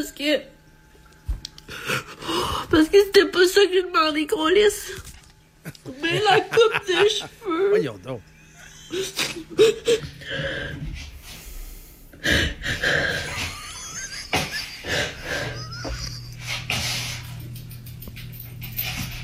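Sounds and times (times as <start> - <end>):
speech: 0.0 - 0.6, 2.6 - 8.3, 8.9 - 11.1, 12.2 - 13.5
faint steady hum: 0.0 - 19.2
laughter: 5.6 - 7.7, 8.4 - 10.2, 13.2 - 16.6
woman crying: 5.7 - 7.9, 8.5 - 10.3, 15.0 - 16.4.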